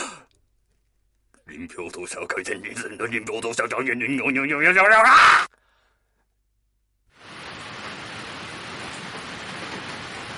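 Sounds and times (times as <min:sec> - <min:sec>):
speech: 0:01.6 - 0:05.6
rain falling: 0:07.1 - 0:10.3.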